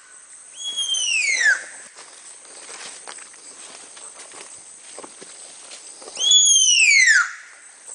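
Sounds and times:
Baird's tapir whistling squeals: 0.6s - 1.7s, 6.1s - 7.4s.

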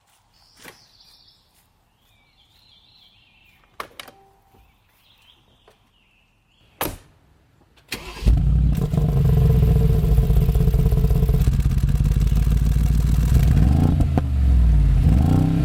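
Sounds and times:
G Class car exhaust: 8.3s - 15.6s.

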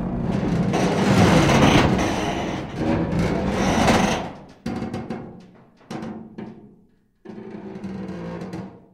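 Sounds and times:
rusty metal: 0.2s - 6.6s.

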